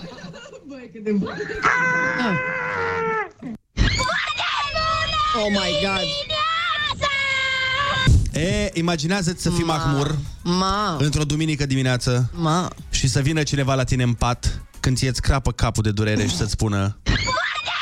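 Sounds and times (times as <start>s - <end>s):
speech: 0.7s - 3.6s, 5.4s - 6.3s, 8.4s - 17.4s
children shrieking: 1.6s - 8.1s, 17.1s - 17.7s.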